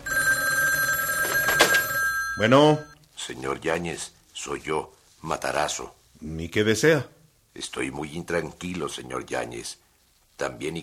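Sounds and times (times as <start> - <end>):
telephone bell ringing: 0.0 - 3.0
speech: 2.4 - 9.8, 10.4 - 10.8.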